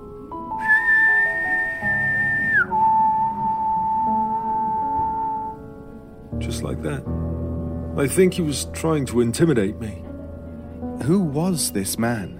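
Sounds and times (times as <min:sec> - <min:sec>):
man imitating a whistle with his voice: 0:00.5 - 0:05.6
speech: 0:06.6 - 0:07.2, 0:08.0 - 0:10.0, 0:11.0 - 0:12.3.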